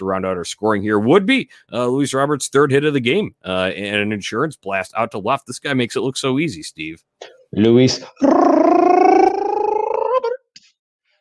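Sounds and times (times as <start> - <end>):
speech: 0.0 - 9.0
voice holding a loud rolled R trill: 8.2 - 10.3.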